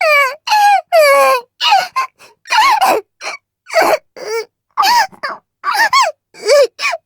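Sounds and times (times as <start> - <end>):
girl crying: 0.0 - 3.1, 3.7 - 7.0.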